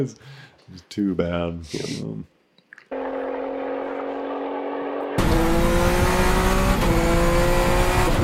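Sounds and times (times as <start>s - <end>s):
speech: 0.0s - 2.3s
rally car engine revving through gear shifts: 3.0s - 8.2s.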